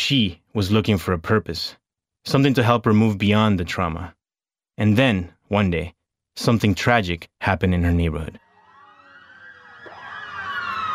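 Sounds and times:
speech: 0:00.1 - 0:04.2, 0:04.8 - 0:08.4
emergency vehicle sirens speeding past a house in a neighborhood: 0:08.4 - 0:10.9.

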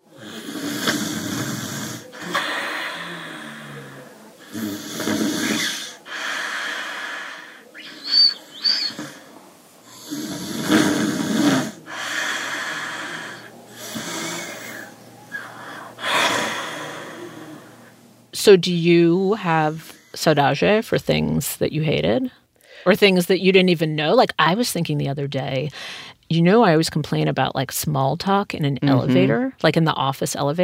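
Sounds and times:
grandmother snoring: 0:00.0 - 0:17.9
speech: 0:18.5 - 0:30.6.

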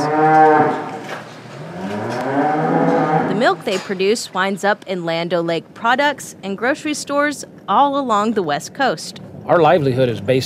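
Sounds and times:
dairy cows mooing: 0:00.0 - 0:03.8
speech: 0:03.6 - 0:10.4.

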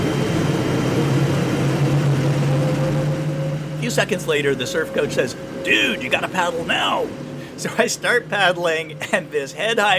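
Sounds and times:
wave pool machine roaring like a jet engine: 0:00.0 - 0:09.9
speech: 0:04.0 - 0:09.9.

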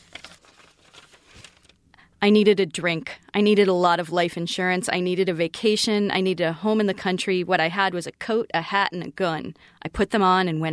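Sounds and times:
paper rustling as it is pulled out: 0:00.0 - 0:01.8
speech: 0:02.2 - 0:10.7.

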